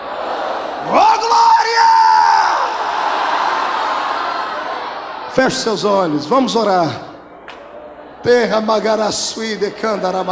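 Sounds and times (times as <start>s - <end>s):
large church audience shouting in unison: 0.0s - 6.2s
speech: 5.4s - 7.1s, 8.2s - 10.3s.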